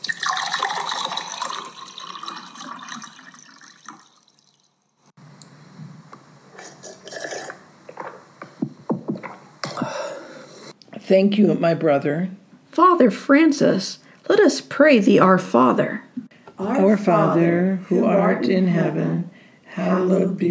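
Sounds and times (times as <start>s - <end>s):
water pouring into a cup: 0.0s - 4.8s
speech: 11.1s - 16.0s, 16.6s - 20.4s.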